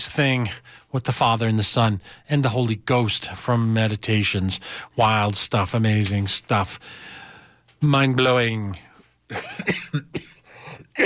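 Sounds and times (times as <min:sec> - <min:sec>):
speech: 0:00.2 - 0:07.2, 0:07.8 - 0:10.3
person coughing: 0:09.3 - 0:11.0
throat clearing: 0:09.3 - 0:11.0.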